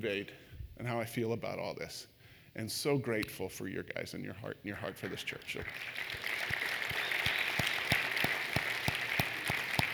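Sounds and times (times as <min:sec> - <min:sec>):
speech: 0:00.0 - 0:06.5
audience applauding: 0:05.0 - 0:09.9.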